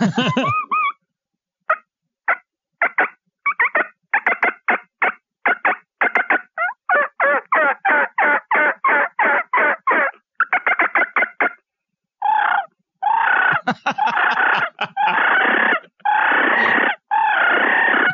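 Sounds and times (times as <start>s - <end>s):
laughter: 0.0s - 0.7s, 13.5s - 15.8s, 16.6s - 16.8s
aggressive turkey yelps and cutts on a mouth call: 2.3s - 11.6s, 12.2s - 18.1s.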